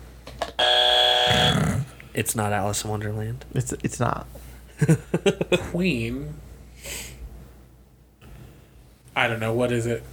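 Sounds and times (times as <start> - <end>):
loud harsh electronic game buzzer blaring: 0.6 - 1.7
speech: 2.2 - 7.1, 9.2 - 10.1.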